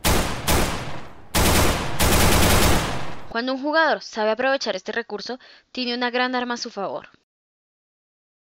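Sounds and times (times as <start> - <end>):
rapid automatic gunfire from a video game: 0.0 - 3.3
speech: 3.4 - 7.2.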